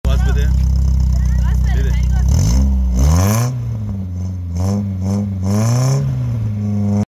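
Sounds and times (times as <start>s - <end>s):
Tornado engine exhaust: 0.1s - 7.0s.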